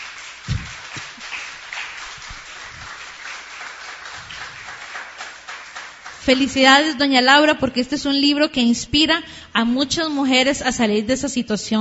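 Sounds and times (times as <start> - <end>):
crowd applauding the author of a book: 0.0 - 6.6
speech: 6.3 - 11.8.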